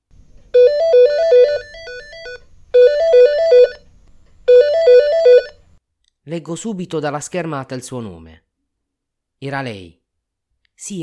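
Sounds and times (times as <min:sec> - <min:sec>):
mobile phone melodic ringtone jingle: 0:00.6 - 0:03.8, 0:04.5 - 0:05.6
speech: 0:06.3 - 0:08.5, 0:09.4 - 0:10.0, 0:10.8 - 0:11.0.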